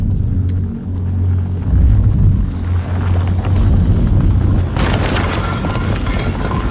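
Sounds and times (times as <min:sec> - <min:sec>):
deep steady underground rumble: 0:00.0 - 0:06.6
crumbling clatter of falling rock: 0:04.8 - 0:06.6.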